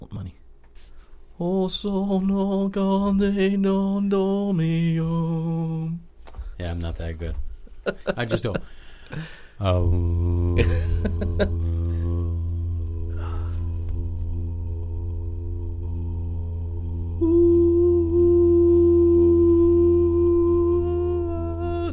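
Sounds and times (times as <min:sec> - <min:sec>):
speech: 0:01.4 - 0:11.7
laughter: 0:07.8 - 0:08.7, 0:10.5 - 0:11.9
steady electronic hum: 0:09.6 - 0:21.9.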